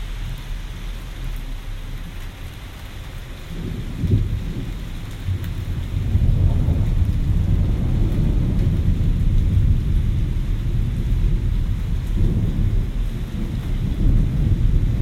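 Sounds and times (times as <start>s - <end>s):
heavy rain in Reading, Pennsylvania: 0.0s - 15.0s
deep rumbles of thunder: 3.4s - 15.0s.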